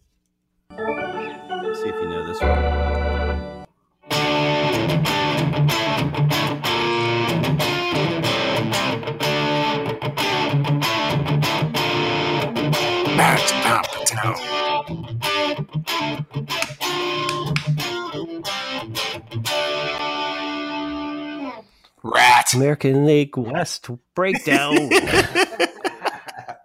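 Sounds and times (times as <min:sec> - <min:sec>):
speech: 0:01.8 - 0:03.5, 0:22.5 - 0:25.7
hard rock recording: 0:04.1 - 0:18.0
heavily distorted electric guitars: 0:04.1 - 0:21.4
laughter: 0:24.3 - 0:26.6.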